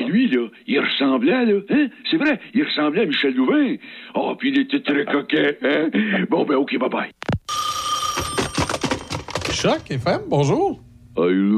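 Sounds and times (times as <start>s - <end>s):
speech: 0.1s - 7.6s, 9.6s - 11.5s
telephone ringing with an electronic trill: 7.5s - 9.9s.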